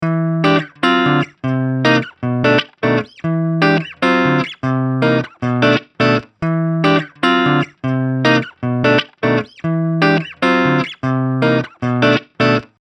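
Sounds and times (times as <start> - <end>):
clean electric guitar neck pickup: 0.0 - 12.8.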